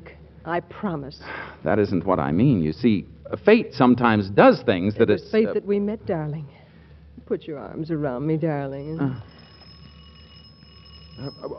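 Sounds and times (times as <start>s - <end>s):
speech: 0.4s - 6.6s, 7.2s - 9.3s, 11.2s - 11.5s
electric doorbell ringing in a steady tone: 8.7s - 11.5s.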